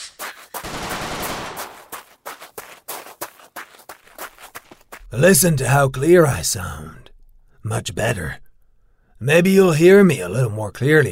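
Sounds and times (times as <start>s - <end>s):
gunfire from people shooting through a hole: 0.6s - 2.1s
speech: 5.1s - 7.0s, 7.6s - 8.4s, 9.2s - 11.1s.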